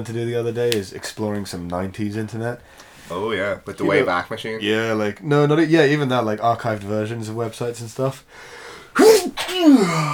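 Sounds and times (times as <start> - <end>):
speech: 0.0 - 10.1
human sneeze: 9.0 - 10.1.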